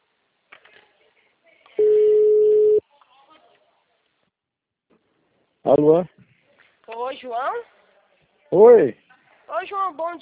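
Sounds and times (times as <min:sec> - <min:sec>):
ringback tone of an outgoing telephone call: 0:01.8 - 0:02.8
speech: 0:05.7 - 0:06.2, 0:07.1 - 0:07.7, 0:08.5 - 0:09.0, 0:09.6 - 0:10.1.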